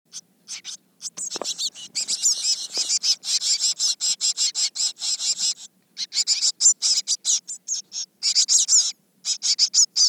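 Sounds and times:
Eurasian blue tit Cyanistes caeruleus calls: 0.1s - 10.0s.

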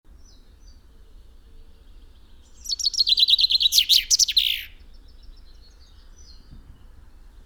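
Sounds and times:
common chaffinch Fringilla coelebs singing: 1.8s - 5.8s.

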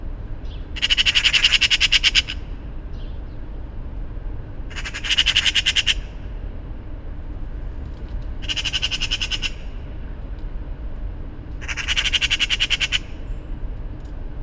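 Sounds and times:
steady low rumble: 0.0s - 14.4s
Eurasian magpie harsh rattling chatter: 0.4s - 2.4s, 4.7s - 6.1s, 7.9s - 9.7s, 11.5s - 13.2s.

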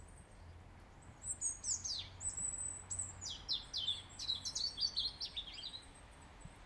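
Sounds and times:
European robin singing thin very high whistles and downward sweeps: 1.2s - 5.8s.

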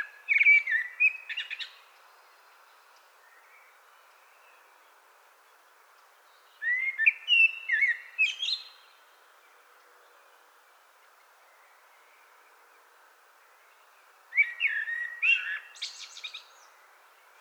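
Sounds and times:
common blackbird Turdus merula whistled song with scratchy twittering: 0.0s - 1.8s, 6.4s - 8.9s, 14.3s - 16.8s.

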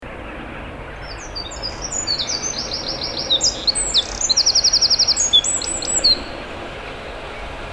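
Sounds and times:
Eurasian wren Troglodytes troglodytes singing: 0.0s - 7.6s.

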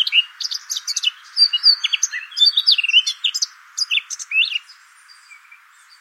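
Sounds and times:
Eurasian blackcap Sylvia atricapilla singing: 0.0s - 6.0s.

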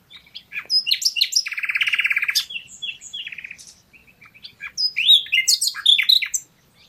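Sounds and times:
Luscinia megarhynchos common nightingale singing: 0.0s - 6.8s.

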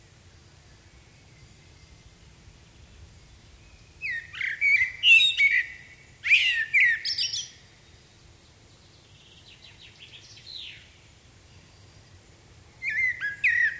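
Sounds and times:
common blackbird Turdus merula singing: 3.6s - 8.0s, 8.9s - 12.0s, 12.8s - 13.7s.

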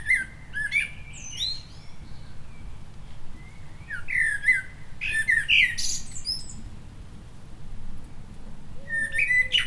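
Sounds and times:
common blackbird Turdus merula singing: 0.0s - 2.8s, 3.4s - 6.7s, 8.8s - 9.6s.

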